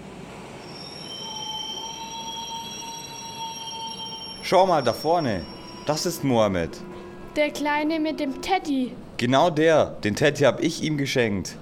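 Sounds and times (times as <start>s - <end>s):
train rumbling into a busy station platform: 0.0s - 11.6s
train brakes squealing in high piercing tones: 0.6s - 7.4s
speech: 4.5s - 11.6s.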